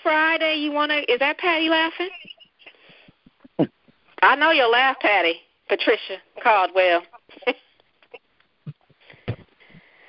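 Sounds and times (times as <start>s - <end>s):
speech: 0.1s - 2.2s, 3.6s - 7.7s
hissy breathing over an open phone line: 2.6s - 3.3s, 9.0s - 10.0s.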